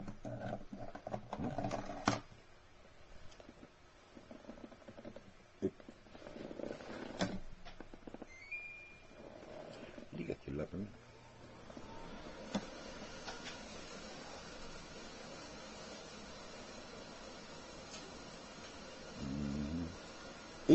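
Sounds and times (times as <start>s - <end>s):
air conditioner starting up and humming: 0.0s - 20.7s
short electronic beep: 8.3s - 9.1s.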